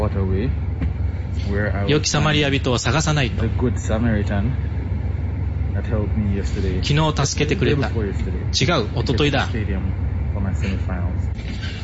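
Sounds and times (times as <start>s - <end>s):
low engine rumble inside a moving bus: 0.0s - 11.8s
speech: 0.1s - 4.8s, 5.8s - 11.8s.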